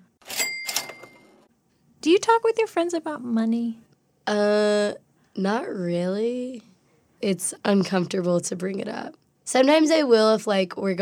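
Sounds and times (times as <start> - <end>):
cash register cha-ching: 0.2 - 1.5
speech: 2.0 - 10.9.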